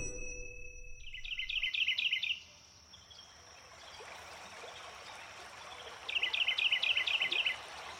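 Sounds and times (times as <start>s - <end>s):
bird singing repeated chirping phrases: 0.2s - 4.0s, 5.7s - 7.6s
rushing water of the Gualeguaychú River in Argentina: 3.3s - 7.9s.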